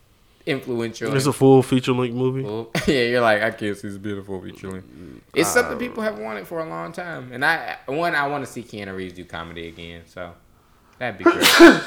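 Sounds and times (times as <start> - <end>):
speech: 0.5 - 10.4, 11.0 - 11.8
sharp loud sneeze: 5.4 - 6.0, 11.2 - 11.8.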